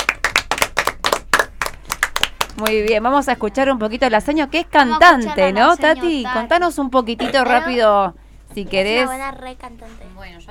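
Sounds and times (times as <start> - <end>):
hands clapping in applause: 0.0 - 3.0
speech: 2.6 - 10.4.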